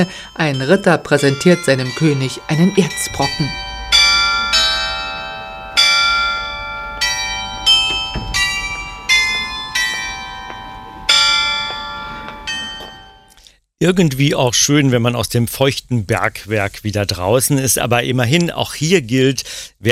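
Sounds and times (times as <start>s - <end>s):
speech: 0.0s - 3.6s, 13.8s - 19.8s
market square glockenspiel bells chiming a slow melody: 0.0s - 13.4s.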